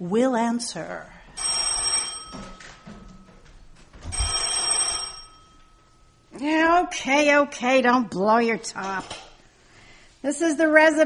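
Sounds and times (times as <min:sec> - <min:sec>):
speech: 0:00.0 - 0:01.6, 0:06.4 - 0:09.2, 0:10.2 - 0:11.0
old-fashioned telephone bell ringing: 0:01.4 - 0:06.3.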